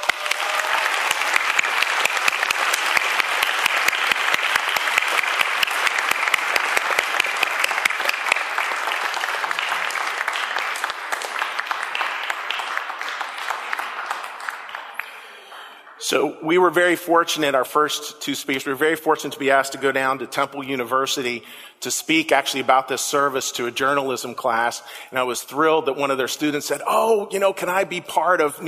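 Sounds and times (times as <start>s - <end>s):
applause from a sizable audience: 0.0s - 16.1s
speech: 16.1s - 28.6s.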